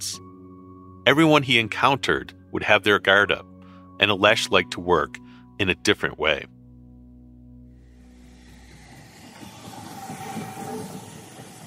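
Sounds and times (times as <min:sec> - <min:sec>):
speech: 0:01.0 - 0:06.6
thin drawn-out metallic squeal of train: 0:08.0 - 0:11.6
train rolling into a station: 0:08.1 - 0:11.6.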